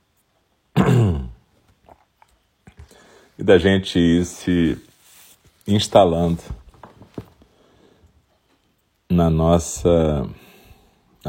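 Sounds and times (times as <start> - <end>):
throat clearing during a guided zazen meditation session: 0.7 - 1.4
speech: 3.4 - 4.9, 5.7 - 6.6, 9.2 - 10.4.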